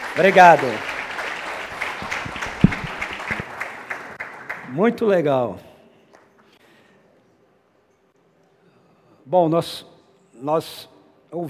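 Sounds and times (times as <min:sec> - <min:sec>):
small audience applause: 0:00.0 - 0:04.8
speech: 0:00.2 - 0:00.9, 0:04.7 - 0:05.7, 0:09.3 - 0:11.4.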